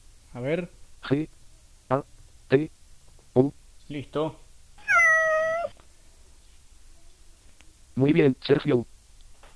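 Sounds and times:
speech: 0.4s - 2.8s, 3.4s - 4.4s, 8.0s - 8.9s
cat meowing: 4.8s - 5.8s.

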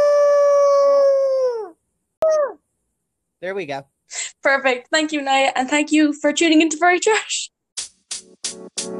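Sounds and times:
person imitating a wolf howl: 0.0s - 2.6s
speech: 3.4s - 7.5s.

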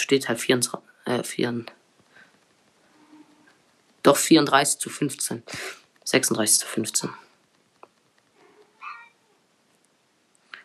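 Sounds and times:
speech: 0.1s - 1.8s, 4.0s - 7.3s
cat whining with short meows: 2.9s - 3.5s, 8.4s - 9.5s.

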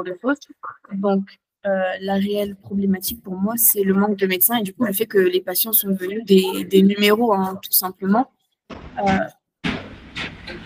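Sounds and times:
speech: 0.0s - 9.4s
door squeaking and creaking: 8.7s - 10.6s.

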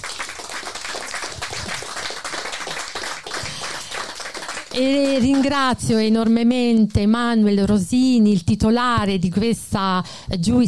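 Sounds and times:
audience applause: 0.0s - 5.8s
speech: 4.7s - 10.6s.

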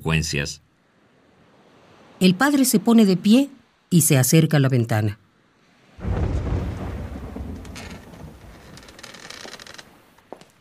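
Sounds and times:
speech: 0.0s - 0.6s, 2.2s - 5.2s
hiss of rain and scattered drops: 5.6s - 10.3s
deep roll of thunder from approaching storm: 6.0s - 9.1s.

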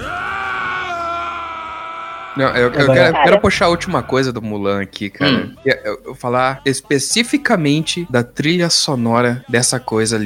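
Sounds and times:
person imitating a villain's battle cry scream: 0.0s - 3.4s
speech: 2.4s - 10.2s.

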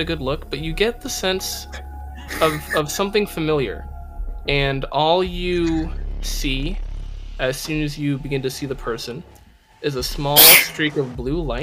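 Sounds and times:
speech: 0.0s - 6.8s, 7.4s - 11.6s
person sneezing: 2.2s - 2.8s.

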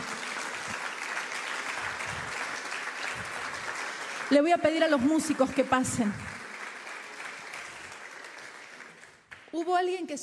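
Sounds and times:
crowd applauding loudly: 0.0s - 9.6s
speech: 4.3s - 6.3s, 9.6s - 10.2s.

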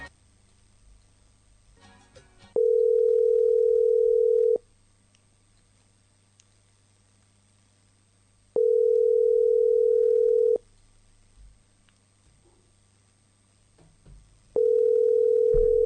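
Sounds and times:
ringback tone of an outgoing phone call: 2.6s - 4.6s, 8.6s - 10.6s, 14.6s - 15.8s.

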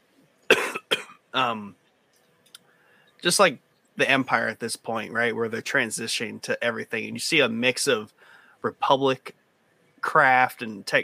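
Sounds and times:
person coughing: 0.5s - 1.6s
speech: 1.3s - 1.8s, 3.2s - 9.4s, 10.0s - 11.0s.

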